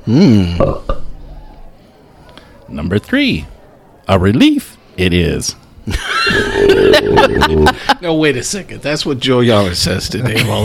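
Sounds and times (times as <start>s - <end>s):
speech: 0.0s - 0.9s, 2.7s - 3.5s, 4.1s - 10.6s
loud belch during a beer tasting: 0.4s - 1.0s, 6.3s - 7.8s
laughter: 5.9s - 8.2s, 10.2s - 10.6s
short guttural grunt: 6.4s - 7.8s.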